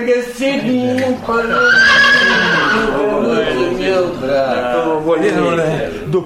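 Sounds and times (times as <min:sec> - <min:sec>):
speech: 0:00.0 - 0:06.2
horse whinnying with a long wavering neigh: 0:01.4 - 0:03.6.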